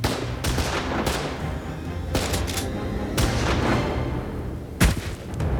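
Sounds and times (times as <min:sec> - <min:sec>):
barrage of gunfire: 0:00.0 - 0:01.4, 0:02.1 - 0:03.8, 0:04.8 - 0:05.5.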